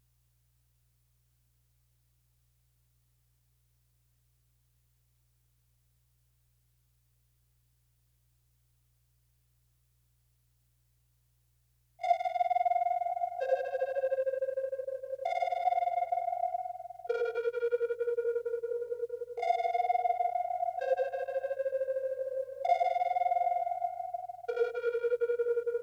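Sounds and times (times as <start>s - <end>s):
dark synth melody loop in A minor: 12.1s - 25.8s.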